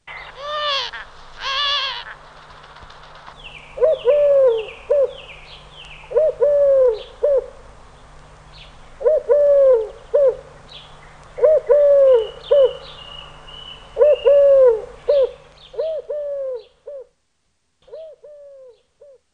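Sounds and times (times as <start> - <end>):
collared dove cooing: 0.0 - 2.2, 3.8 - 5.2, 6.0 - 7.6, 9.0 - 10.5, 11.4 - 12.8, 14.0 - 17.2, 17.8 - 19.2.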